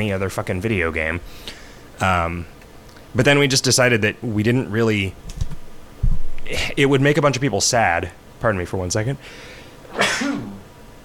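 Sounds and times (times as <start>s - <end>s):
speech: 0.0s - 5.4s, 6.5s - 10.5s
person sneezing: 9.9s - 10.7s.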